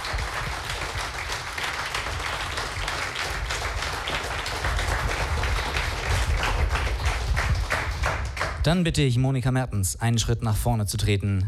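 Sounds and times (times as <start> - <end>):
applause from a large crowd: 0.0 - 8.6
speech: 8.6 - 11.4.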